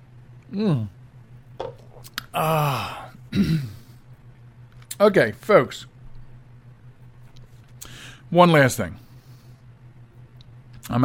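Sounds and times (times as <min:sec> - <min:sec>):
speech: 0:00.5 - 0:01.0, 0:02.3 - 0:03.7, 0:05.0 - 0:05.9, 0:08.3 - 0:09.0, 0:10.9 - 0:11.0
person clearing throat: 0:02.4 - 0:03.9.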